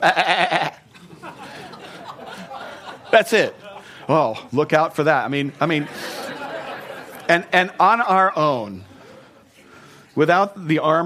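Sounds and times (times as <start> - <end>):
speech: 0.0 - 0.3, 3.2 - 6.0, 7.3 - 8.9, 10.2 - 11.0
sheep bleating: 0.0 - 0.8
laughter: 0.0 - 9.7.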